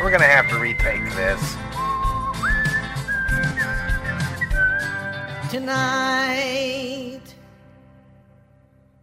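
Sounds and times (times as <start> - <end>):
person whistling a tune: 0.0 - 5.4
speech: 0.1 - 1.8, 5.5 - 7.3.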